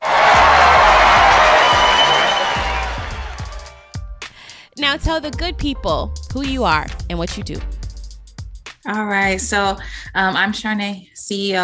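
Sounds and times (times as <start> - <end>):
audience applauding welcoming a guest: 0.0 - 3.8
speech: 4.9 - 7.8, 8.8 - 11.6.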